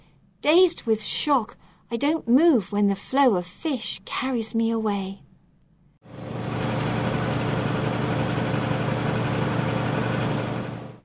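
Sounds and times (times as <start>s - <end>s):
speech: 0.4s - 5.2s
boat engines rumbling: 6.0s - 11.0s.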